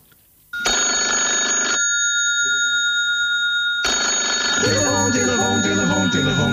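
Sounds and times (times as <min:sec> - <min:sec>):
electronic telephone ringing: 0:00.6 - 0:06.5.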